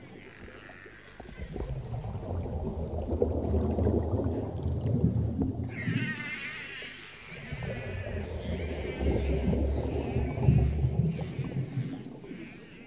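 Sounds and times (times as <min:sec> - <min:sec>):
whales and dolphins calling underwater: 0:00.0 - 0:03.5, 0:05.3 - 0:12.8
dense rumbling low wash of water underwater: 0:01.2 - 0:06.4, 0:07.3 - 0:12.5.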